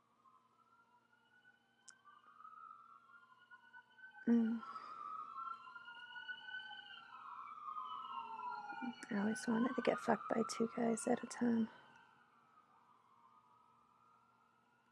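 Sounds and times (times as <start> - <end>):
ambulance siren wailing: 2.3 - 12.0
speech: 4.3 - 4.8, 9.2 - 11.8.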